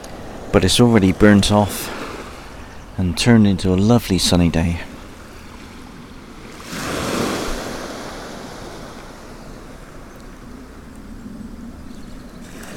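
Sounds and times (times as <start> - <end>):
surf washing onto the beach at Combe Martin on a calm, nearly windless morning: 0.0 - 2.8, 4.5 - 12.7
speech: 0.5 - 2.0, 3.0 - 4.9.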